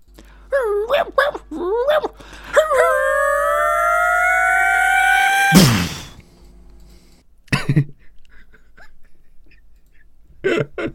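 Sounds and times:
dog-like video game creature giving warbling yelps: 0:00.6 - 0:06.2
sharp loud video game shockwave blast: 0:05.3 - 0:06.2.

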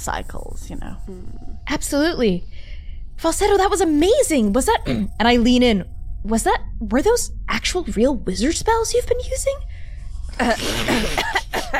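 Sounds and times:
speech: 0:00.0 - 0:11.7
throaty coughing from one person: 0:04.8 - 0:05.1, 0:10.4 - 0:11.7.

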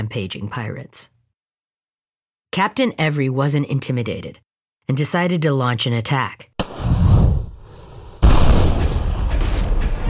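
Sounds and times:
speech: 0:00.0 - 0:01.2, 0:02.5 - 0:06.5
loud cannon blast: 0:08.2 - 0:10.0
low booming rumble: 0:08.2 - 0:10.0.

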